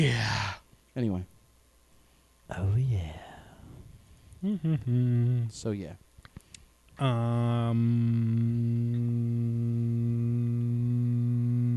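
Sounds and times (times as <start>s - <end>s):
speech: 0.0s - 1.3s, 2.5s - 3.3s, 4.4s - 6.0s, 7.0s - 10.6s
person humming one low steady note: 4.4s - 5.6s, 7.0s - 11.7s.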